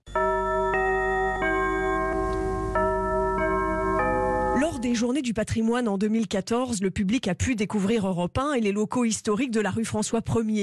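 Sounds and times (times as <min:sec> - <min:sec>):
radio station chime jingle played on a large music-box-like device: 0:00.1 - 0:05.1
speech: 0:04.8 - 0:10.6.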